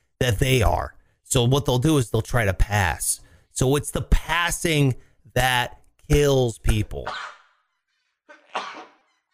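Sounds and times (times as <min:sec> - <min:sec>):
speech: 0:00.2 - 0:07.4
person sneezing: 0:08.5 - 0:09.0.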